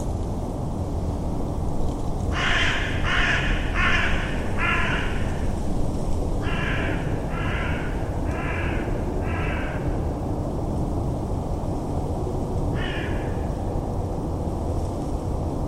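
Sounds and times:
steady low rumbling background noise: 0.0 - 15.6
bird giving harsh cawing calls: 2.3 - 5.5, 6.4 - 10.1, 12.7 - 13.6.

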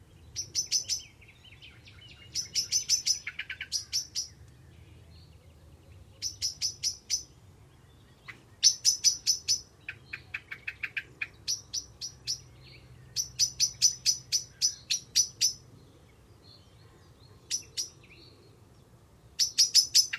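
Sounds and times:
bird high sharp ticking chirps: 0.3 - 1.2, 2.0 - 4.5, 6.1 - 7.4, 8.1 - 15.7, 17.5 - 18.2, 19.3 - 20.1.

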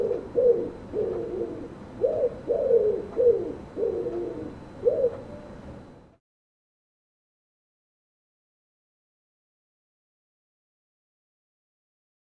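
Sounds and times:
bird cooing in husky low phrases: 0.0 - 5.7.

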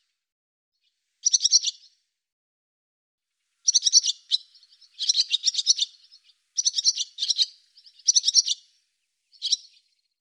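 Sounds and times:
barn swallow calls in rapid high chirps: 3.6 - 8.7, 9.3 - 9.8.

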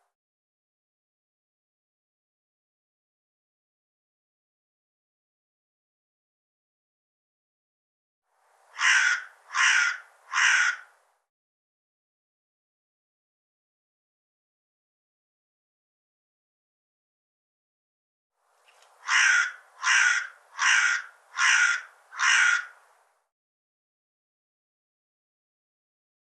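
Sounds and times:
harsh bird calls: 8.8 - 10.9, 19.0 - 22.8.

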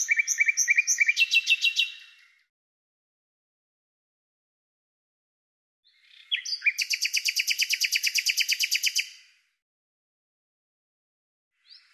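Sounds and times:
bird singing: 0.0 - 2.5, 5.8 - 9.3, 11.6 - 11.9.

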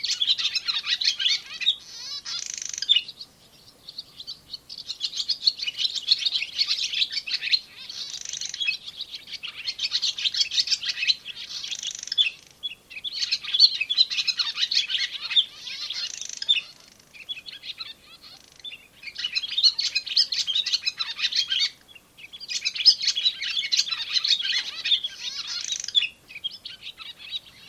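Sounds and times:
barn swallow chattering: 0.1 - 3.2, 3.9 - 27.6.

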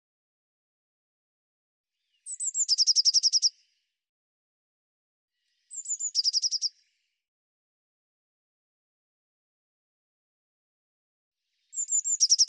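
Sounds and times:
Eurasian blue tit giving high thin falling whistles and churring buzzy pulses: 2.0 - 3.8, 5.4 - 7.2, 11.5 - 12.4.

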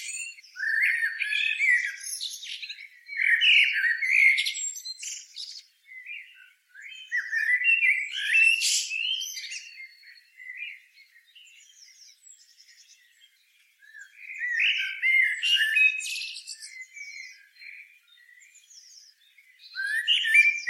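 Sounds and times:
common blackbird Turdus merula calling with harsh squeaky chatter and thin whistles: 0.0 - 5.6, 6.8 - 10.7, 13.9 - 17.8, 19.7 - 20.6.

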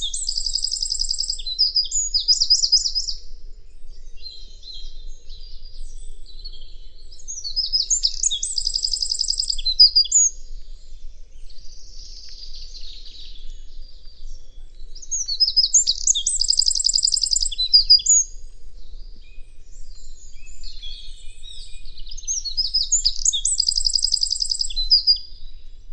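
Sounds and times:
bird giving high buzzy trilled phrases: 0.0 - 3.1, 7.6 - 10.3, 15.1 - 18.2, 22.4 - 25.1
bird chirping: 0.0 - 10.4, 11.2 - 25.3.

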